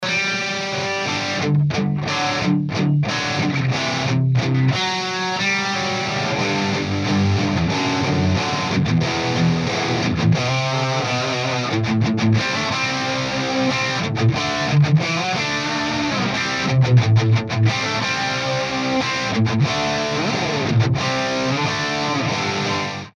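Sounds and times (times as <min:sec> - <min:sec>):
electric guitar through four-speaker amplifier cabinet: 0:00.0 - 0:23.1.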